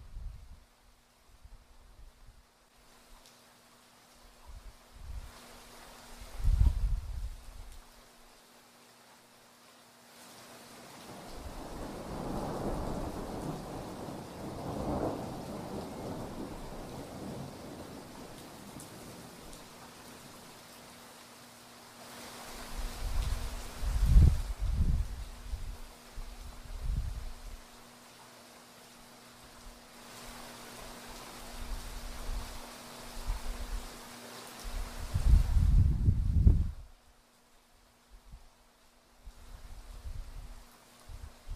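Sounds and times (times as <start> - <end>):
soft rain hiss in a gentle thunderstorm: 0.0 - 41.5
low thunder rolling in a gentle thunderstorm: 11.1 - 18.8.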